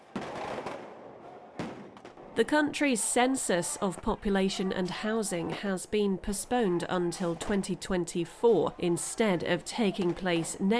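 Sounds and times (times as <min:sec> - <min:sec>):
firework bangs during a street protest: 0:00.0 - 0:02.3
noisy outdoor crowd ambience at a street protest: 0:00.0 - 0:10.7
speech: 0:02.4 - 0:10.7.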